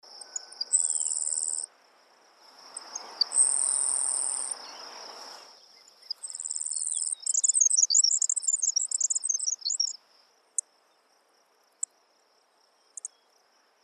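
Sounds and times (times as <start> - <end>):
sparrow: 0.1 - 1.7, 2.7 - 10.0.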